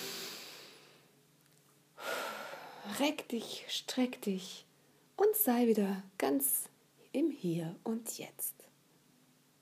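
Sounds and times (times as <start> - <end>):
slow deep breath at the close of a guided relaxation exercise: 0.0 - 1.1, 2.0 - 2.9
speech: 2.8 - 8.7.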